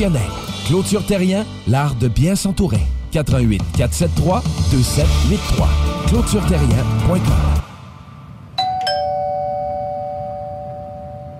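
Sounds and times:
speech: 0:00.0 - 0:07.6
two-tone doorbell chime: 0:08.6 - 0:11.3.

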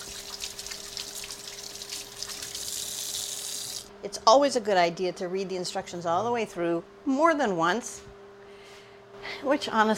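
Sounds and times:
tap water running as cinnamon is washed off hands: 0:00.0 - 0:03.9
speech: 0:04.0 - 0:08.1, 0:09.4 - 0:09.9.

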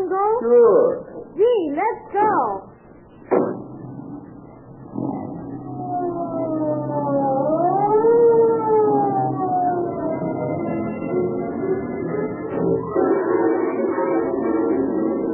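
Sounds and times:
speech: 0:00.4 - 0:02.7
sharp clunks: 0:03.2 - 0:04.0
police car siren wailing: 0:04.3 - 0:15.3.

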